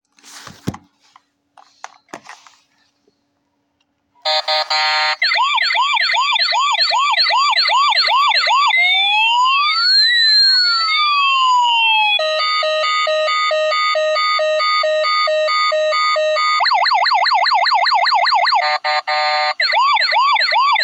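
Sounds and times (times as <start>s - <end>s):
small police car: 4.3s - 20.8s.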